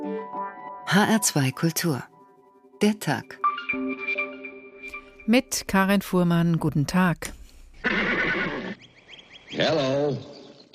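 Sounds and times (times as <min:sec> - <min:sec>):
speech: 0:00.9 - 0:02.1, 0:02.8 - 0:03.4, 0:05.3 - 0:08.2, 0:09.5 - 0:10.3
horse whinnying: 0:07.8 - 0:09.0
faint chirping: 0:08.4 - 0:10.7.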